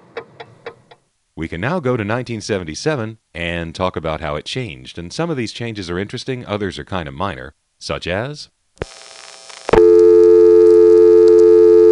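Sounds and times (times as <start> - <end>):
speech: 1.4 - 9.0
1977 telephone reorder tone: 8.8 - 11.8
1977 telephone dial tone: 9.8 - 11.8
click: 11.2 - 11.5.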